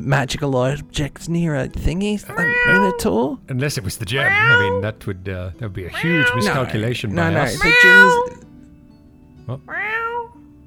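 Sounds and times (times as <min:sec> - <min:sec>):
speech: 0:00.0 - 0:08.4, 0:09.5 - 0:09.8
cat chirp: 0:02.3 - 0:03.1, 0:04.2 - 0:04.8, 0:05.9 - 0:06.6, 0:07.5 - 0:08.4, 0:09.7 - 0:10.4.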